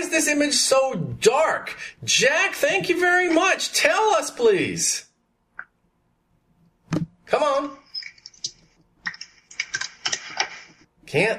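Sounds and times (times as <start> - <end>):
speech: 0.1 - 5.1, 6.9 - 7.8, 11.1 - 11.3
typing on a computer keyboard: 8.0 - 10.7.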